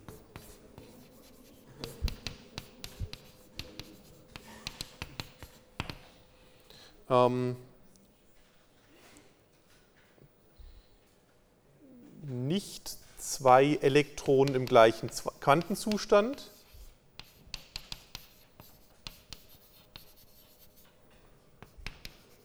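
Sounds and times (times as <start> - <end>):
scratchy writing on a board: 0.0 - 6.2, 12.6 - 22.4
speech: 7.1 - 7.7, 13.4 - 16.6.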